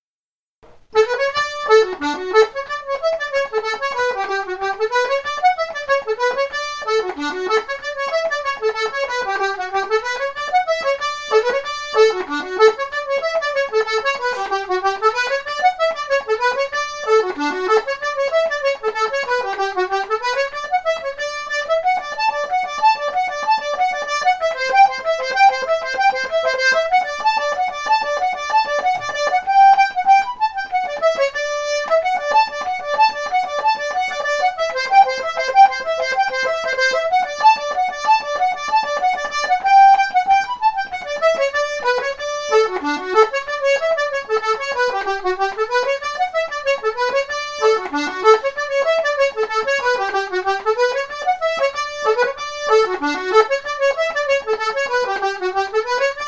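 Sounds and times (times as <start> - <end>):
accordion playing a reel: 0.9 - 56.2.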